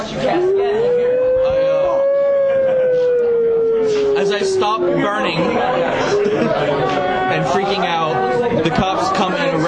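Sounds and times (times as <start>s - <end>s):
speech: 0.0s - 0.9s, 4.7s - 9.6s
human voice imitating a fire engine siren: 0.3s - 6.5s
laughter: 1.9s - 9.6s.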